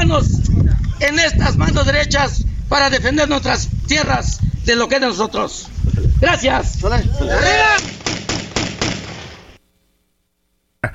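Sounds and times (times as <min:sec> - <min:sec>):
speech: 0:00.1 - 0:08.1
voice crying out: 0:07.0 - 0:07.9
gunshots: 0:07.6 - 0:09.6.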